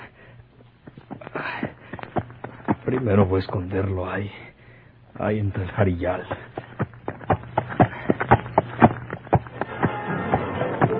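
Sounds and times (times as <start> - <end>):
low steady hum: 0.0 - 10.9
horse's hooves clopping at a walking pace: 0.8 - 3.9, 5.8 - 10.9
speech: 2.9 - 4.6, 5.2 - 6.4.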